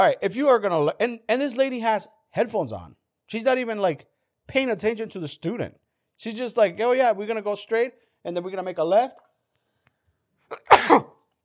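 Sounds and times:
speech: 0.0 - 9.2
sneeze: 10.5 - 11.2.

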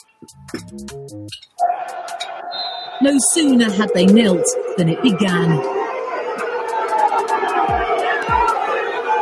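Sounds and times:
speech: 0.0 - 5.8
large stadium crowd of football fans booing: 1.4 - 9.2
sharp whistles from a stadium crowd: 2.4 - 3.2.

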